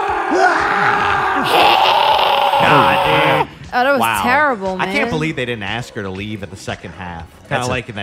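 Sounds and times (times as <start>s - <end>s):
woman screaming: 0.3s - 3.5s
speech: 2.7s - 8.0s.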